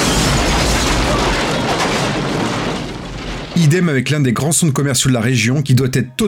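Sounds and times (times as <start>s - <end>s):
loud roaring explosion of a film production blowing up a neighborhood: 0.0s - 4.1s
speech: 3.6s - 6.2s.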